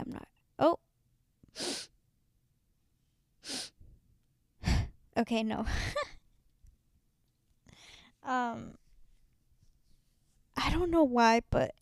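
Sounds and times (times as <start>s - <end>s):
speech: 0.6s - 0.8s, 1.5s - 1.9s, 5.2s - 6.1s, 8.2s - 8.8s, 10.6s - 11.8s
sharp hissing breaths of an aborted sneeze: 1.6s - 2.0s, 3.4s - 3.8s.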